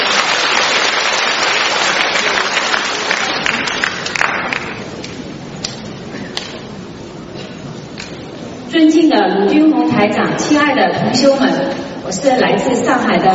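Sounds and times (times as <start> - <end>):
large audience applause: 0.0 - 5.0
speech: 9.2 - 13.3.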